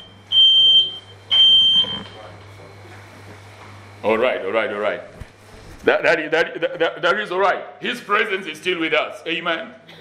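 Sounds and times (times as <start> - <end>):
smoke alarm beeping: 0.0 - 2.4
steady low electrical hum: 0.0 - 9.9
speech: 4.0 - 5.2, 5.8 - 9.9.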